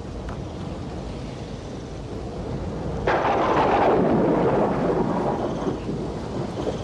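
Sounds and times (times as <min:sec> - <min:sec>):
steady hiss of storm noise: 0:00.0 - 0:06.8
thunder rumbling in a thunder-and-lightning storm: 0:02.0 - 0:06.8.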